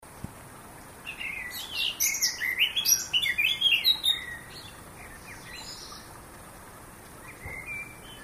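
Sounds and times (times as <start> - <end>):
Eurasian blackcap Sylvia atricapilla singing: 1.1 - 6.1, 7.2 - 8.2
faint bird chirps: 1.1 - 6.2, 7.2 - 8.2.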